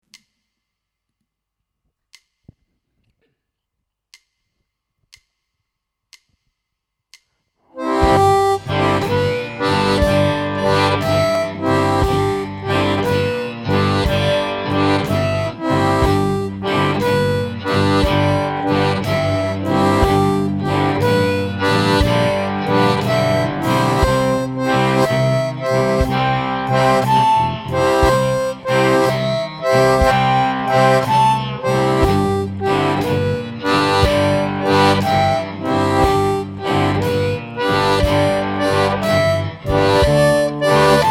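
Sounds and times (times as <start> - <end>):
slow shuffle boogie single notes played with tongue blocking technique: 7.7 - 41.0.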